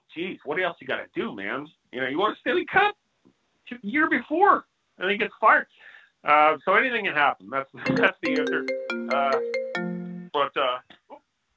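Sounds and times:
speech: 0.2s - 3.0s, 3.7s - 9.6s, 10.3s - 10.9s
phone ringtone playing a short electronic melody: 7.9s - 10.4s.

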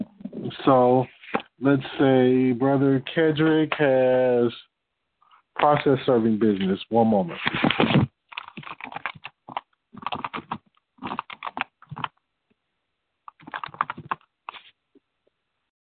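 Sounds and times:
speech: 0.5s - 4.7s, 5.6s - 8.1s
typing on a computer keyboard: 8.3s - 12.1s, 13.3s - 14.3s.

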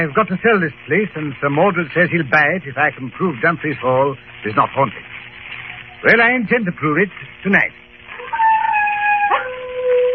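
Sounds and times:
speech: 0.0s - 5.2s, 6.0s - 7.8s
dogs baying and howling: 8.1s - 10.1s.

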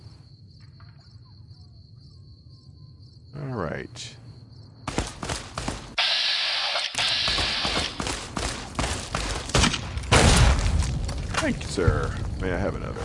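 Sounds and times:
speech: 3.4s - 4.2s, 11.4s - 13.0s
video game gunfire from a gunslinger: 4.9s - 10.6s.

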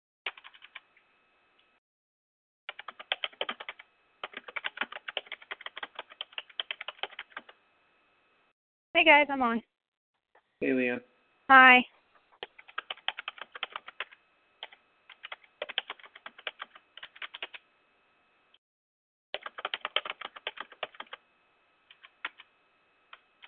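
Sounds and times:
fast typing on a computer keyboard: 0.3s - 0.8s, 2.7s - 7.6s, 12.4s - 17.6s, 19.4s - 21.2s, 21.9s - 22.5s
speech: 9.0s - 9.7s, 10.6s - 12.0s.

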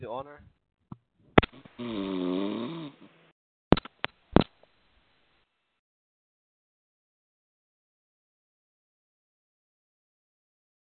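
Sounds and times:
speech: 0.0s - 0.6s, 1.5s - 2.9s
sharp clicks and pops on a conference call line: 0.9s - 1.8s, 3.7s - 4.8s
person snoring on a conference call: 1.7s - 3.2s.

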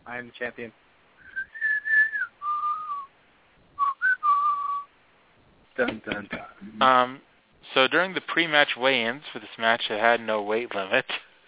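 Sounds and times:
speech: 0.1s - 0.9s, 5.8s - 11.2s
person whistling a short melody: 1.2s - 3.1s, 3.8s - 4.9s.

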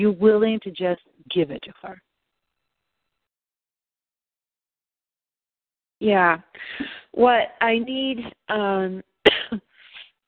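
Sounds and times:
speech: 0.0s - 2.1s, 6.0s - 9.7s
harsh coughing: 9.3s - 9.7s.

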